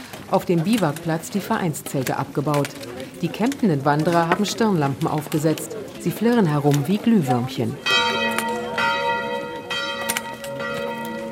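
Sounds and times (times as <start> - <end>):
speech: 0.3 - 8.0
church bells ringing: 4.1 - 11.3.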